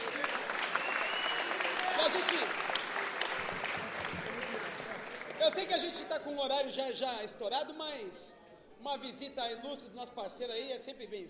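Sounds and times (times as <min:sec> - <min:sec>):
crowd applause at a community gathering: 0:00.0 - 0:06.2
speech: 0:06.3 - 0:11.2.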